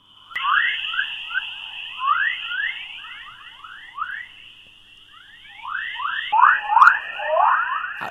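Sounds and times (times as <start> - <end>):
steady high electronic tone from Earth's radio emissions: 0.0 - 8.0.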